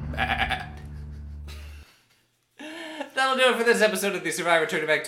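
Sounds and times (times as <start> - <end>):
goat bleating: 0.1 - 0.9
speech: 3.4 - 5.0.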